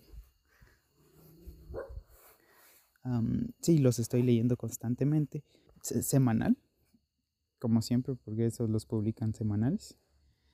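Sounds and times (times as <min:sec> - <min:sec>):
small dog barking: 0:01.7 - 0:02.0
speech: 0:03.0 - 0:06.6, 0:07.6 - 0:10.0.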